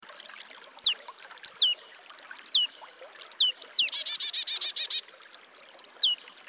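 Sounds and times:
Marsh Tit Poecile palustris calling: 0:00.4 - 0:01.8, 0:02.4 - 0:05.1, 0:05.8 - 0:06.2.

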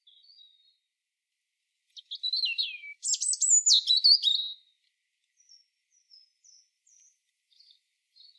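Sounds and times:
European robin singing thin high whistles and trills: 0:02.0 - 0:04.7, 0:05.4 - 0:08.3.

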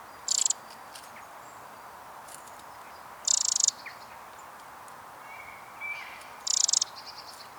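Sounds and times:
Eurasian wren call rattle: 0:00.2 - 0:01.2, 0:02.3 - 0:07.5
faint ticks: 0:02.3 - 0:03.7, 0:06.5 - 0:07.5.

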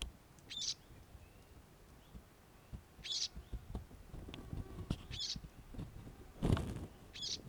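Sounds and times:
low background noise: 0:00.0 - 0:07.4
Eurasian blackcap Sylvia atricapilla ticking calls: 0:00.4 - 0:03.6, 0:05.1 - 0:05.4, 0:07.1 - 0:07.4.

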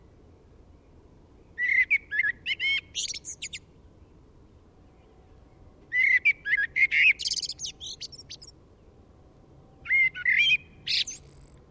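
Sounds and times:
Eurasian blackbird singing: 0:01.5 - 0:03.6, 0:05.9 - 0:08.5, 0:09.8 - 0:11.6.

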